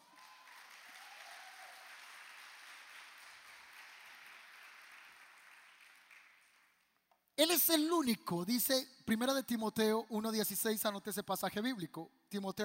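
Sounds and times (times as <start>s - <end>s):
audience at a church service applauding: 0.0s - 6.9s
speech: 7.4s - 12.6s.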